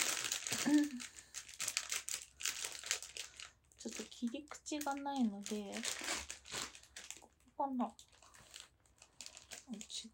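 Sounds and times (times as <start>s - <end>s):
plastic inner bag crinkling while being handled to open: 0.0s - 10.1s
speech: 0.6s - 1.2s, 3.8s - 6.1s, 7.6s - 8.1s, 9.7s - 10.1s.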